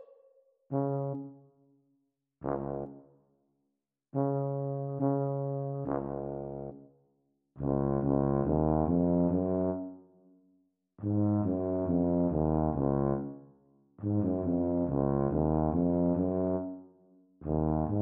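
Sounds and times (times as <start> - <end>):
Eb tuba duet practice: 0.7 - 1.4, 2.4 - 3.1, 4.1 - 6.8, 7.6 - 10.0, 11.0 - 13.4, 14.0 - 16.8, 17.4 - 18.0.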